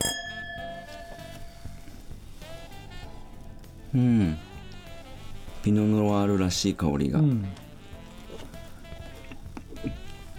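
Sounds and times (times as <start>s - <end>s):
wine glasses filled with pink Pinot Noir clinking in a toast: 0.0s - 2.0s
speech: 3.9s - 4.5s, 5.6s - 7.6s.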